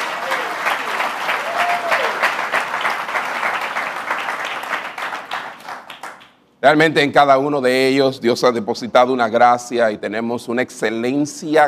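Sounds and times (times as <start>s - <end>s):
faint voices and cheers: 0.0s - 2.3s
audience applauding: 0.0s - 6.3s
speech: 6.6s - 11.6s.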